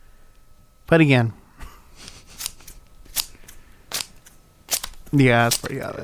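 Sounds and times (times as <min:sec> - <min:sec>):
speech: 0:00.9 - 0:01.4, 0:05.1 - 0:06.0
scissors cutting paper: 0:02.0 - 0:05.9.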